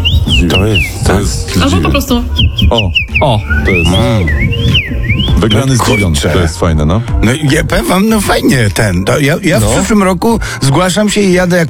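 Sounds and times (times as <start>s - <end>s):
common rosefinch singing whistled notes: 0.0s - 6.5s
speech: 0.4s - 11.6s.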